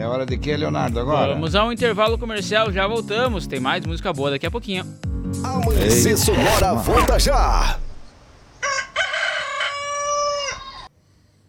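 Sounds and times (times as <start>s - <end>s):
speech: 0.0s - 7.8s
rooster crowing: 8.6s - 10.9s.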